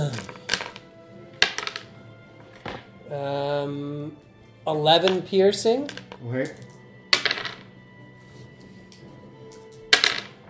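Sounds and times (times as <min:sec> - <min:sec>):
dice clattering across a hard tabletop: 0:00.0 - 0:02.0, 0:02.6 - 0:02.9, 0:05.0 - 0:07.7, 0:08.9 - 0:10.4
speech: 0:03.1 - 0:06.7.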